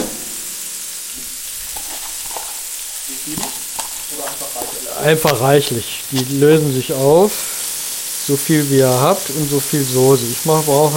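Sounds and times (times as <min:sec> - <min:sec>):
onions frying in melted margarine in a pot: 0:00.0 - 0:10.9
stirring clicks and scrapes: 0:01.7 - 0:06.4
speech: 0:05.0 - 0:07.5, 0:08.3 - 0:10.9.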